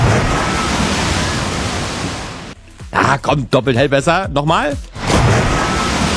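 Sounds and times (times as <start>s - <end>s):
loud water slide whoosh and splash: 0.0s - 2.6s, 4.9s - 6.1s
speech: 3.2s - 5.0s.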